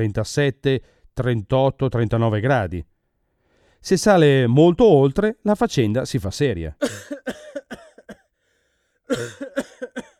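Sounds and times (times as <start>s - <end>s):
speech: 0.0s - 2.9s, 3.8s - 7.4s, 9.1s - 10.1s
person coughing harshly: 6.8s - 8.3s, 9.1s - 10.1s.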